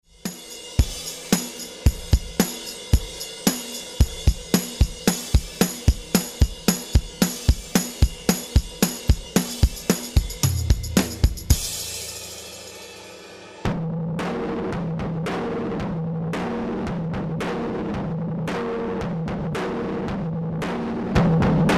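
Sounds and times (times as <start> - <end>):
wet drums: 0.0 - 21.7.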